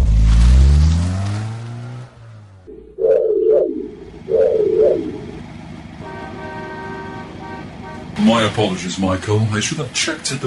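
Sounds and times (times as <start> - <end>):
car engine roaring as it accelerates onto a highway: 0.0 - 10.4
short warbling chirp-like tones: 2.7 - 5.4
low rumble: 2.7 - 5.6
speech: 8.4 - 10.4.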